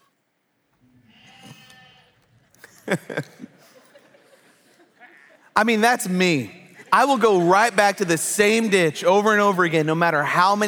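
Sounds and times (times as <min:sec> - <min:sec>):
sheep bleating: 0:01.1 - 0:02.3
laughter: 0:02.5 - 0:08.7
speech: 0:02.9 - 0:03.6, 0:05.6 - 0:10.6.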